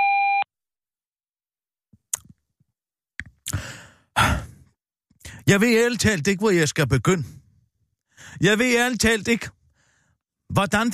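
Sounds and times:
short electronic voicemail beep: 0.0 - 0.5
breathy sighs and exhalations: 3.5 - 4.7
speech: 5.5 - 7.4, 8.3 - 9.6, 10.5 - 10.9.

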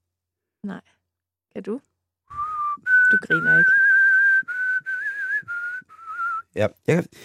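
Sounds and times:
speech: 0.6 - 3.9, 6.6 - 7.2
person whistling long steady notes: 2.3 - 6.6.

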